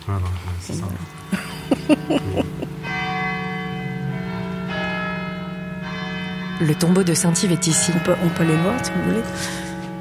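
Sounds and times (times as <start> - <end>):
speech: 0.1 - 2.8, 6.6 - 9.7
cathedral church bells ringing a hymn tune: 0.9 - 9.9
laughter: 1.3 - 2.8.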